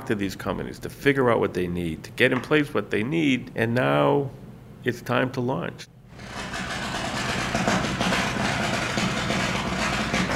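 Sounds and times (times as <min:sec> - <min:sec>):
speech: 0:00.1 - 0:06.4
grinding of steel on a boat at a shipyard for paint prep: 0:06.1 - 0:10.3.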